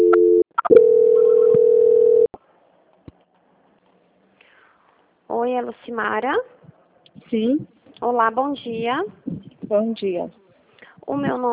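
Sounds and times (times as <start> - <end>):
telephone line tone during a call transfer: 0.0 - 2.3
speech: 5.5 - 6.6, 7.2 - 10.4, 11.1 - 11.5.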